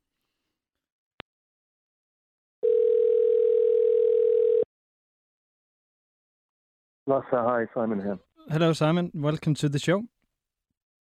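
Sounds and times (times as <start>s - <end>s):
steady telephone dial tone: 2.6s - 4.7s
speech: 7.1s - 10.2s.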